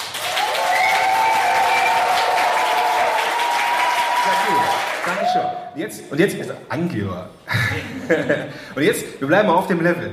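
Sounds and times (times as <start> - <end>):
live workshop audience applauding: 0.0 - 5.6
speech: 4.3 - 10.1
laughter: 7.5 - 8.6.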